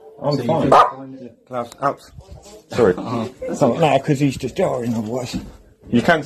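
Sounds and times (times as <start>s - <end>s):
faint voices murmuring: 0.0s - 6.2s
speech: 0.2s - 6.2s
dog barking: 0.7s - 1.0s.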